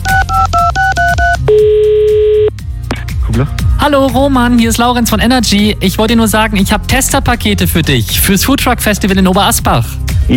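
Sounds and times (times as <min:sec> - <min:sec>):
touch-tone telephone dialing beeps: 0:00.0 - 0:02.5
speech: 0:03.4 - 0:10.3.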